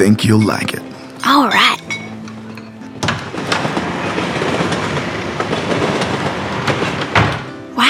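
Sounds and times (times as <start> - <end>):
speech: 0.0 - 1.8
train cars rolling on rails: 1.9 - 7.8.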